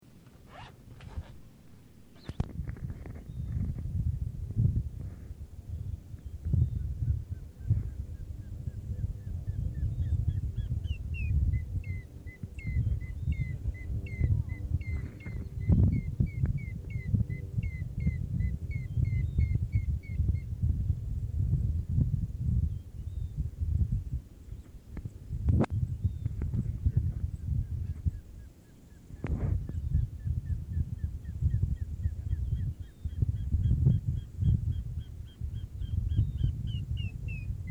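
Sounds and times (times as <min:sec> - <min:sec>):
birds: 0:00.0 - 0:37.6.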